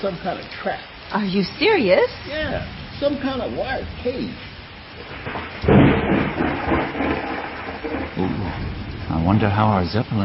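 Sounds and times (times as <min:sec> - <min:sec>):
speech: 0:00.0 - 0:05.4, 0:08.2 - 0:10.2
steady rain-like storm noise: 0:00.0 - 0:10.2
deep rolling thunder: 0:02.1 - 0:10.2.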